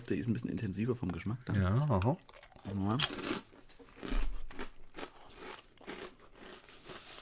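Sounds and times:
soft chewing: 0.0s - 7.2s
speech: 0.1s - 3.4s
crunching bites into a cold meat-free patty: 2.2s - 7.1s.

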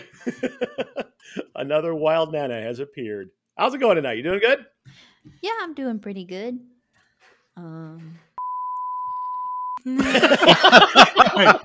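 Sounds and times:
laughter: 0.0s - 1.5s, 9.9s - 11.6s
speech: 0.2s - 1.0s, 1.6s - 6.7s, 7.6s - 8.2s, 9.8s - 11.6s
steady high electronic beep: 8.4s - 9.8s.

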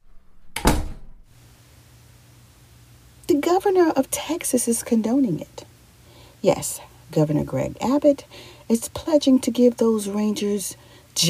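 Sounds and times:
single heavy door slamming shut: 0.3s - 1.3s
speech: 3.4s - 5.7s, 6.4s - 11.2s.

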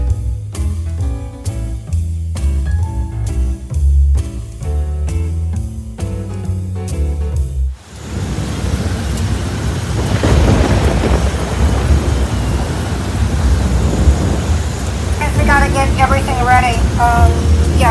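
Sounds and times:
short burst of music: 0.0s - 7.8s, 15.2s - 17.8s
heavy rain during Hurricane Ian in Florida: 7.7s - 17.8s
deep rolling thunder during Hurricane Ian in Florida: 7.8s - 17.8s.

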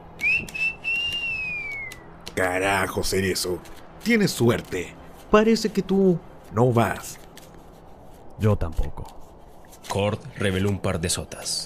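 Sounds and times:
person giving a quiet sustained whistle at a card table: 0.2s - 2.0s
speech: 2.4s - 7.2s, 8.4s - 9.2s, 9.9s - 11.6s.

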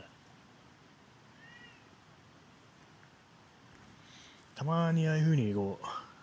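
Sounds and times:
outdoor wind: 0.0s - 6.2s
cat meowing as if begging: 1.4s - 1.9s
speech: 4.6s - 6.0s.

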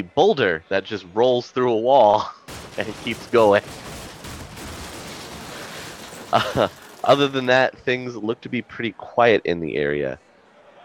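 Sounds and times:
speech: 0.0s - 3.8s, 6.3s - 10.2s
distant gunshots about a block away: 2.5s - 7.6s.

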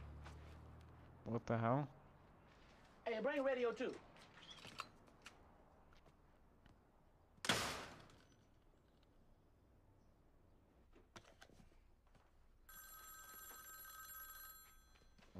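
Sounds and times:
speech: 1.3s - 2.0s, 3.1s - 4.1s
telephone ringing: 12.7s - 15.3s.

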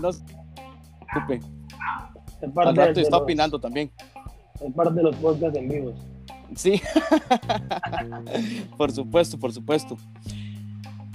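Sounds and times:
speech: 0.0s - 0.4s, 1.1s - 10.4s
dog barking in short sharp bursts: 1.1s - 2.2s
low steady hum: 1.1s - 3.6s
laughter: 6.7s - 8.8s.

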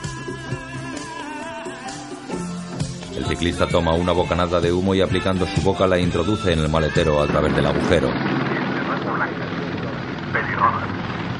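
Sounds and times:
speech: 3.2s - 8.5s
police helicopter flying overhead: 3.6s - 11.3s.

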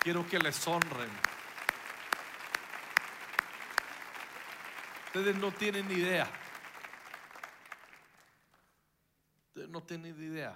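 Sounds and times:
speech: 0.0s - 1.4s, 5.2s - 6.4s, 9.7s - 10.5s
audience clapping in unison: 0.0s - 8.8s.

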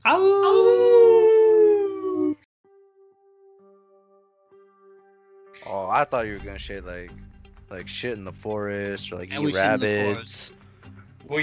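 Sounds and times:
speech: 0.0s - 0.7s, 6.0s - 10.6s
person imitating a wolf howl: 0.0s - 2.4s, 9.4s - 10.0s.

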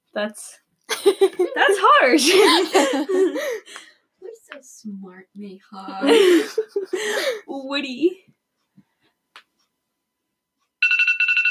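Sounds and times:
speech: 0.2s - 3.9s, 4.5s - 8.3s
laughter: 0.9s - 3.7s, 5.9s - 7.4s
phone reminder alarm ringing with a bright electronic melody: 10.8s - 11.4s.

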